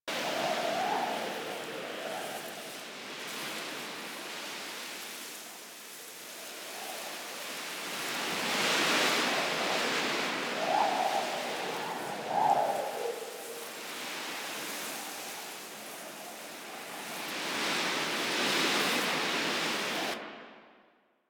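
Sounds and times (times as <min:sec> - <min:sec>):
medium wind in grass: 0:00.1 - 0:20.2.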